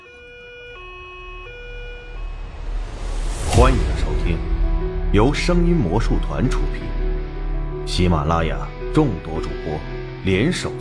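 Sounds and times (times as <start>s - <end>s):
ambulance siren: 0.0s - 7.5s
speech: 3.6s - 4.5s, 5.1s - 7.0s, 7.9s - 10.7s.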